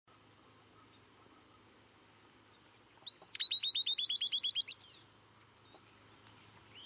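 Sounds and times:
Camptostoma obsoletum southern beardless tyrannulet call: 3.0s - 4.8s.

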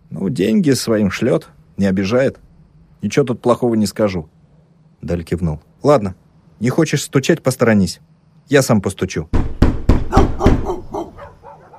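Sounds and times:
speech: 0.2s - 4.4s, 5.0s - 9.5s
dogs barking in a yard: 10.1s - 11.7s.

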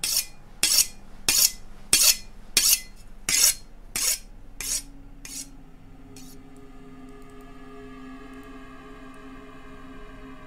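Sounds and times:
pig-sticking knife being sharpened with rasping strokes: 0.0s - 5.5s.

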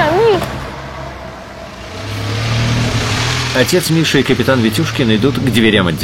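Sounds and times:
car driving past: 0.0s - 6.0s
speech: 3.6s - 6.0s.

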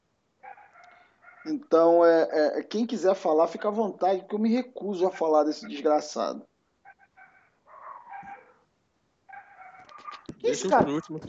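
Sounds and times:
speech: 1.4s - 6.5s, 10.5s - 11.2s
neighbour's dog barking in faint high whining yelps: 6.9s - 8.6s, 9.3s - 10.3s.

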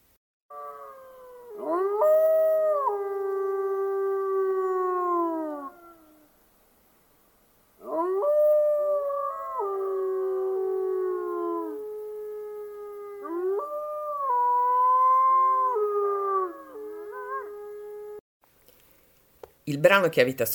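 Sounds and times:
wolf howling: 0.5s - 6.3s, 7.8s - 18.2s
speech: 19.7s - 20.5s.

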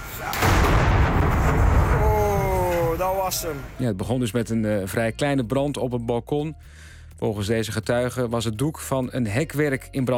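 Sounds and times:
gas cylinders exploding on a balcony during a fire: 0.0s - 3.3s
speech: 3.3s - 10.1s.

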